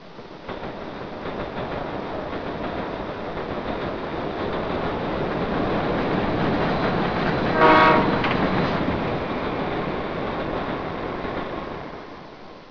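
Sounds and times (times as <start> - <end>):
subway train: 0.0 - 12.6.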